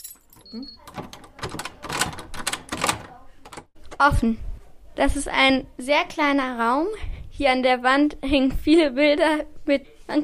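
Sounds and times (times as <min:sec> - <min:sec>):
key rattling and turning in a door lock: 0:00.0 - 0:03.8
speech: 0:00.5 - 0:01.1, 0:04.0 - 0:10.2.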